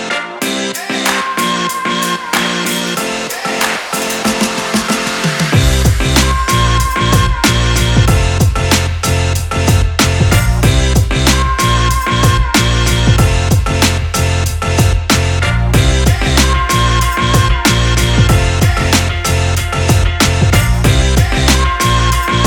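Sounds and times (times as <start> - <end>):
game music beat: 0.2 - 22.4.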